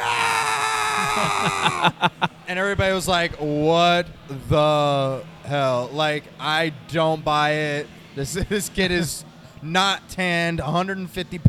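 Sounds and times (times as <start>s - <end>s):
performer screaming at his entrance at a Battle Royal: 0.0s - 2.1s
laughter: 0.0s - 3.6s
speech: 1.2s - 11.4s.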